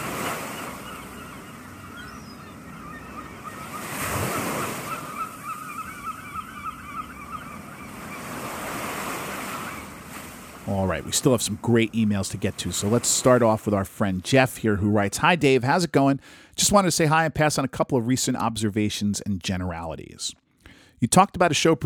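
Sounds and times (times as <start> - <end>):
ocean wave breaking: 0.0 - 1.4, 3.4 - 5.6, 7.2 - 13.7
seagulls crying over the water: 0.0 - 11.4
ocean surf rushing: 0.0 - 16.2
speech: 10.7 - 20.4, 21.0 - 21.8.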